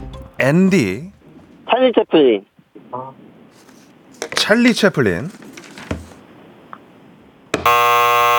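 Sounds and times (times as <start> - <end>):
speech: 0.4 - 1.2, 1.8 - 3.2, 4.4 - 5.5
loud harsh electronic wrong-answer buzzer: 7.6 - 8.3.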